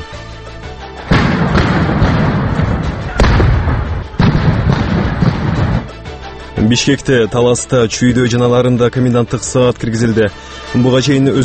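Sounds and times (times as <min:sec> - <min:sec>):
gunfire during street clashes between demonstrators and police in Bishkek: 0:01.1 - 0:06.0
speech: 0:06.6 - 0:11.4.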